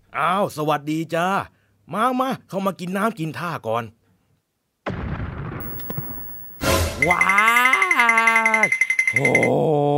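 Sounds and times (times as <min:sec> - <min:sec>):
speech: 0:00.2 - 0:04.0, 0:07.0 - 0:07.6, 0:08.6 - 0:09.9
electrical transformer exploding: 0:04.9 - 0:07.0.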